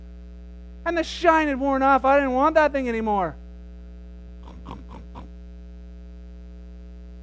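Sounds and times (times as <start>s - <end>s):
constant low electrical hum: 0.0s - 7.2s
speech: 0.9s - 3.4s
pig oinking: 4.4s - 5.4s.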